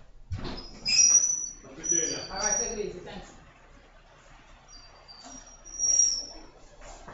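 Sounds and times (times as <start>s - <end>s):
door squeaking and rattling as it is opened: 0.4s - 2.8s, 4.7s - 6.5s.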